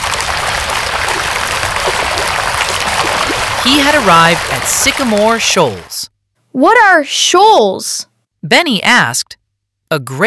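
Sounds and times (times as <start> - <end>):
water splashing over rocks: 0.0 - 6.0
speech: 3.6 - 6.0, 6.6 - 9.3, 9.9 - 10.2.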